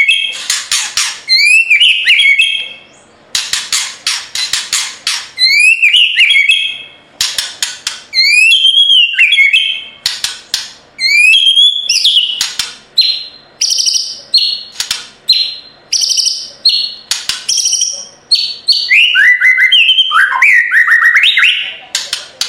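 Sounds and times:
white-rumped shama song with harsh rattling bursts and whistled phrases: 0.0s - 22.4s.

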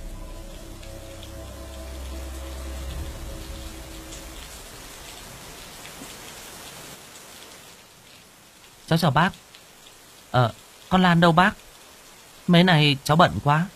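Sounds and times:
deep low rumble of thunder: 0.0s - 6.6s
steady rain falling: 0.0s - 13.7s
speech: 8.9s - 9.5s, 10.3s - 11.6s, 12.5s - 13.7s.

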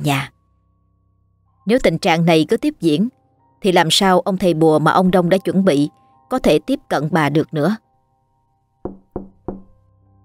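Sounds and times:
speech: 0.0s - 0.4s, 1.6s - 7.8s
knocking on a door: 8.8s - 9.8s.

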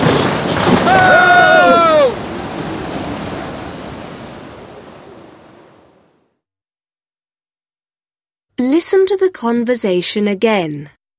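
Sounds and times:
crashing waves of surf: 0.0s - 6.3s
howling storm wind: 0.0s - 6.4s
speech: 8.9s - 11.0s.

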